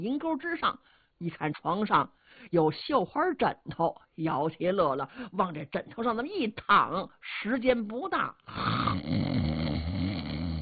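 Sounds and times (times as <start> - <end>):
speech: 0.0 - 9.6
voice imitating loud snoring: 8.5 - 10.5.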